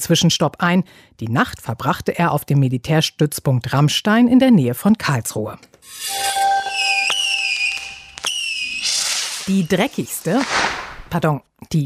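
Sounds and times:
speech: 0.0 - 6.5, 9.5 - 11.8
squealing warbling tones: 5.8 - 10.0
whistling fireworks rockets: 5.9 - 11.1
firecrackers exploding: 6.7 - 11.2.

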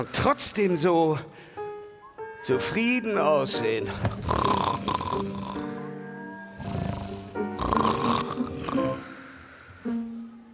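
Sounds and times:
speech: 0.0 - 1.6, 2.4 - 5.7
raspy wheezy snoring while asleep: 4.0 - 5.9, 6.5 - 9.4.

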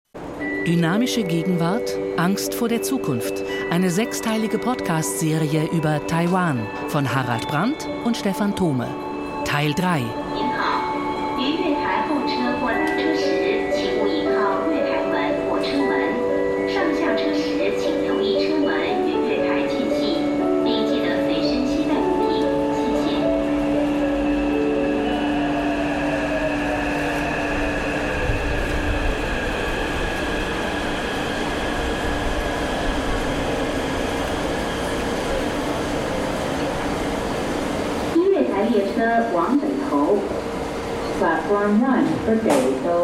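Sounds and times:
moving subway train rumbling: 0.1 - 43.0
speech: 0.7 - 10.5.

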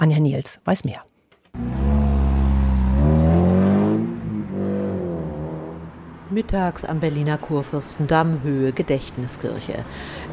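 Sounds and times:
speech: 0.0 - 1.8, 6.3 - 10.3
car engine revving hard on Kurfürstendamm in Berlin: 1.6 - 6.3
faint street hum on Kurfürstendamm in Berlin: 1.6 - 10.3.

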